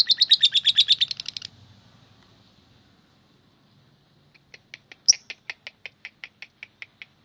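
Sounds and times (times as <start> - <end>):
lovebird scratchy chirps and sharp high notes: 0.0 - 1.5, 4.4 - 7.2.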